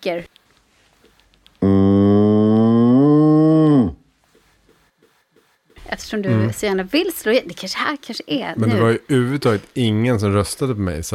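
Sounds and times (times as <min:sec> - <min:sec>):
speech: 0:00.0 - 0:00.4, 0:06.0 - 0:11.1
cow mooing: 0:01.6 - 0:04.0.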